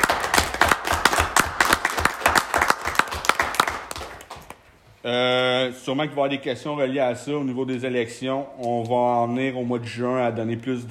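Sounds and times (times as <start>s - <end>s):
small audience clapping: 0.0s - 4.8s
speech: 5.0s - 10.9s.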